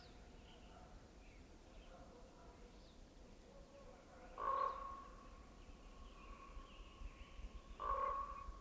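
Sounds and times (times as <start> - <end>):
common raven calling at dawn by a lake in Northeast Washington: 4.4 - 5.1, 7.8 - 8.5.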